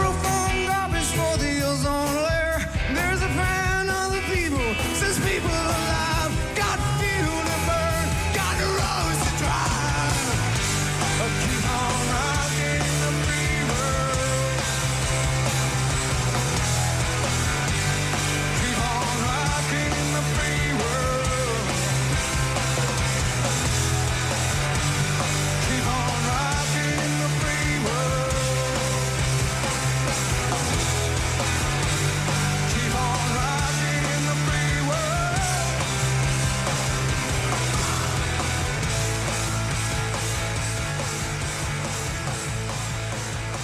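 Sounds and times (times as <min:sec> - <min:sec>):
strained shouted lead vocal: 0:00.0 - 0:15.1, 0:17.7 - 0:22.3, 0:25.0 - 0:36.3, 0:37.0 - 0:38.7
live rock song with distorted guitars and drums: 0:00.0 - 0:43.6.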